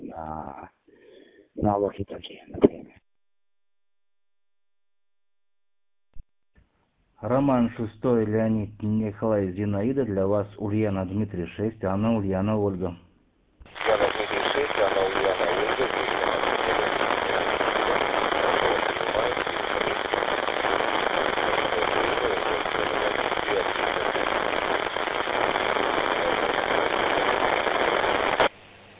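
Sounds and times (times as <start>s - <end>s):
speech: 0.2s - 0.8s, 1.6s - 2.8s, 7.2s - 13.0s
radio static crackle on a received radio transmission: 13.6s - 28.6s.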